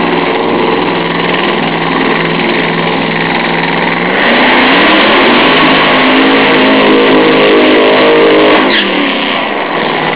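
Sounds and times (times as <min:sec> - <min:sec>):
funny car drag racing engine: 0:00.0 - 0:10.1.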